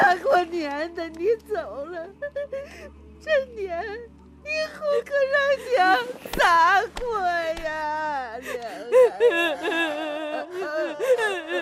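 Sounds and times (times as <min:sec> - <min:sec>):
speech: 0:00.0 - 0:11.6
son crying in grief with wavering wailing voice: 0:08.4 - 0:11.6.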